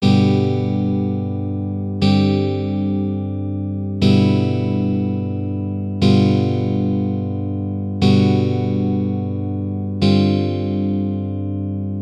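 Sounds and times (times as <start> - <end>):
derived chords in G major: 0.0 - 11.9.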